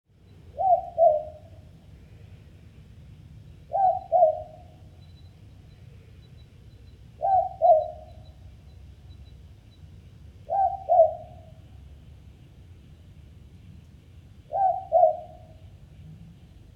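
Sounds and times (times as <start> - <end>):
Ninox boobook: 0.4 - 1.7, 3.7 - 5.3, 6.2 - 8.5, 10.4 - 11.6, 14.5 - 15.6.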